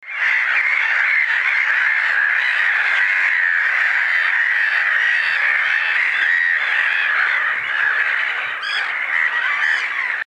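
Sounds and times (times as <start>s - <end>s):
Chroicocephalus ridibundus: 0.0s - 10.2s.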